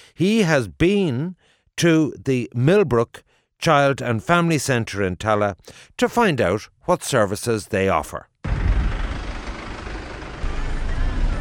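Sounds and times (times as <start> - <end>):
speech: 0.2 - 8.3
bus engine rumbling: 8.5 - 11.3.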